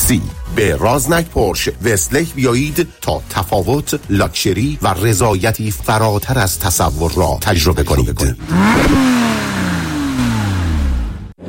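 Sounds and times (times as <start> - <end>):
speech: 0.1 - 9.4
car engine roaring: 6.9 - 11.4.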